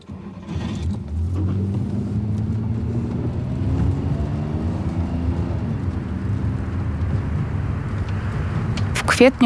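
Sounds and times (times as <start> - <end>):
car driving along a road, heard from inside the cabin: 0.0 - 9.4
speech: 9.2 - 9.4.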